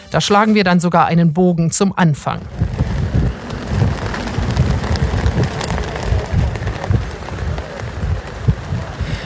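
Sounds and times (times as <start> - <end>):
speech: 0.1 - 2.8
EU flags flapping in a strong wind: 2.3 - 9.2.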